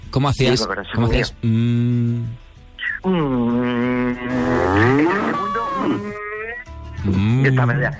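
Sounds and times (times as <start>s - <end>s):
speech: 0.1s - 2.4s, 3.0s - 6.2s, 7.0s - 7.9s
person imitating a cow mooing: 3.1s - 6.6s.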